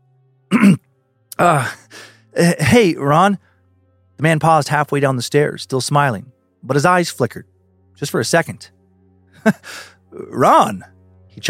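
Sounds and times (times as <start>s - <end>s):
voice imitating a man clearing his throat: 0.5s - 0.8s
speech: 1.4s - 1.8s, 2.4s - 3.5s, 4.2s - 8.8s, 9.4s - 11.4s.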